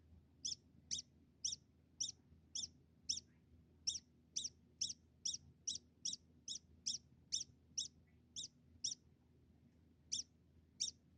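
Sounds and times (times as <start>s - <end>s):
degu uttering high squeaks: 0.4s - 3.3s, 3.9s - 9.0s, 10.1s - 11.0s.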